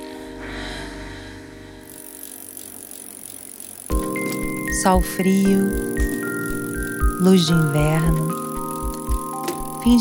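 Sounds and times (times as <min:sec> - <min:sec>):
bicycle ridden around a neighborhood on a cold winter late afternoon: 0:01.8 - 0:09.9
speech: 0:04.8 - 0:06.1, 0:07.2 - 0:08.4.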